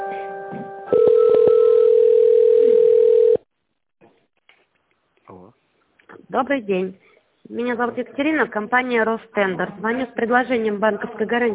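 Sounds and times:
telephone line tones while a call is transferred: 0.9 - 3.4
speech: 6.4 - 11.5.

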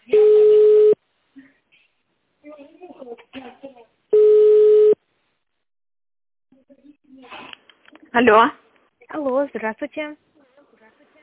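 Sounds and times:
telephone busy signal: 0.2 - 1.0, 4.2 - 5.0
speech: 8.2 - 8.6, 9.4 - 10.3.

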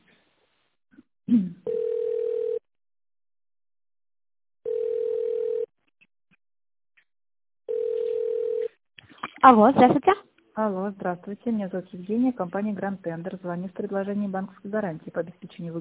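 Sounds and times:
speech: 1.3 - 1.6, 9.5 - 15.7
low telephone ringback tone while a call is being transferred: 1.7 - 2.6, 4.7 - 5.7, 7.7 - 8.6.

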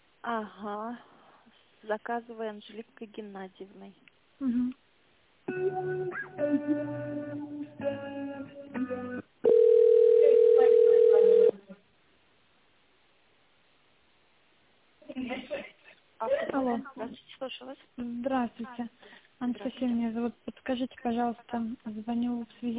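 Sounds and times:
speech: 0.2 - 4.8, 5.5 - 8.1, 16.3 - 22.7
ringback tone on a telephone line while a business call is transferred: 9.5 - 11.5
voices on a telephone line: 9.5 - 11.6.

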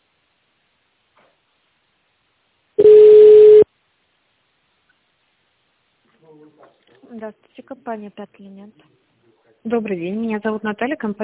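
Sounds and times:
DTMF telephone keypad tone dialing in tone mode: 2.8 - 3.6
speech: 6.3 - 9.0, 9.6 - 11.2.

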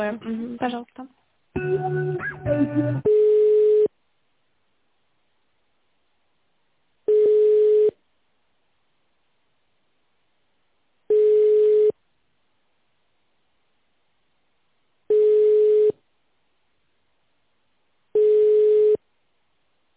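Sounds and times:
speech: 0.0 - 3.1
telephone ringback tones while a call is transferred to a bank's credit department: 3.1 - 3.9, 7.1 - 8.0, 11.1 - 12.0, 15.1 - 16.0, 18.2 - 19.0.

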